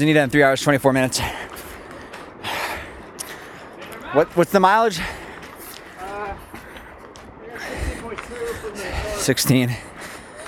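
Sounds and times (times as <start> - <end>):
speech: 0.0 - 1.6, 4.1 - 5.2, 9.3 - 9.9
heavy labored breathing while hiking: 1.1 - 3.9, 4.9 - 10.4.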